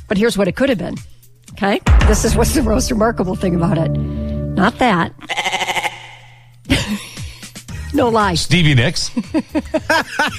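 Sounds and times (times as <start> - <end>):
speech: 0.1 - 5.6, 7.9 - 10.3
goat bleating: 5.2 - 6.4.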